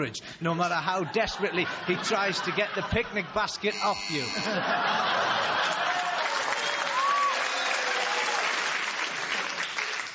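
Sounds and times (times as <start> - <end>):
speech: 0.0 - 5.8
laughter: 0.7 - 6.6
audience applause: 4.7 - 10.1
faint cheering and whoops: 5.8 - 8.6.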